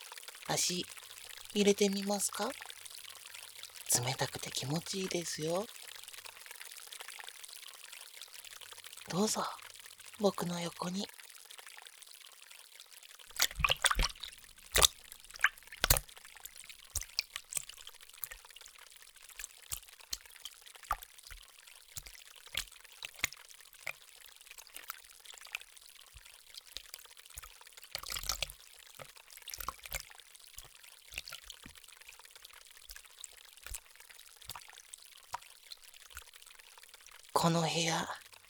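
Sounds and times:
stream flowing through the inside of a room: 0.0 - 38.4
speech: 0.5 - 2.7, 3.9 - 5.8, 9.1 - 9.6, 10.2 - 11.2, 37.4 - 38.2.

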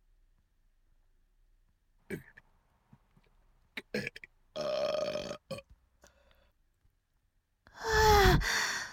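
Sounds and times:
long loud deep burp: 3.8 - 5.7
breathy sigh: 7.7 - 8.9.

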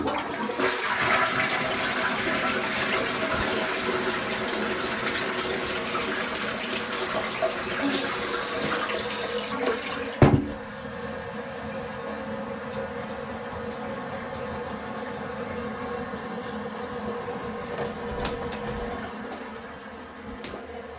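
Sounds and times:
toilet flushing: 0.0 - 20.9
toilet clunk and splash as the flow settles: 3.0 - 3.9, 9.6 - 10.6, 17.6 - 19.7, 20.3 - 20.7.

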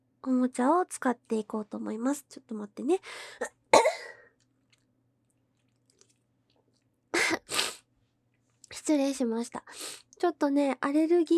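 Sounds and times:
speech: 0.4 - 3.6, 8.8 - 11.3
person sneezing: 3.8 - 4.2, 7.2 - 7.8.

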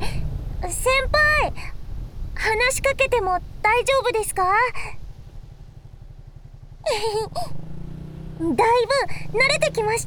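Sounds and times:
motorcycle engine rumbling while riding: 0.0 - 10.0
speech: 2.5 - 5.0, 6.9 - 7.6, 8.4 - 10.0.

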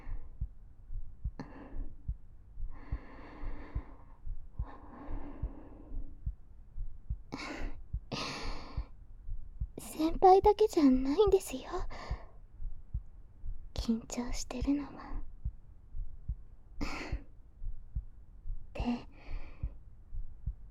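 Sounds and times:
soft breaths: 0.0 - 0.5, 1.2 - 15.3, 16.0 - 20.6
heartbeat thumping in double beats: 0.0 - 20.6
speech: 10.4 - 12.0, 13.9 - 15.1.

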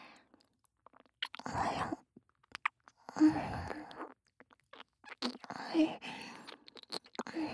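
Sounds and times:
wet licking and mouth sounds on an earlobe: 0.4 - 1.7, 2.3 - 5.6, 6.2 - 7.4.

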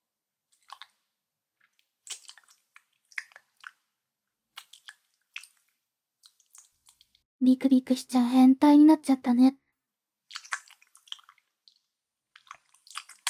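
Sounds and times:
wet chewing and biting: 0.5 - 1.0, 1.6 - 3.9, 4.6 - 7.2, 10.3 - 13.2
speech: 7.4 - 9.6.

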